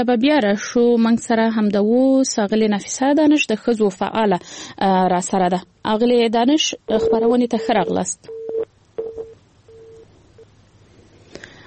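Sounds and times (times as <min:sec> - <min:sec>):
speech: 0:00.0 - 0:08.4
low telephone line hum: 0:02.6 - 0:11.6
faulty telephone line beeps: 0:07.0 - 0:10.5.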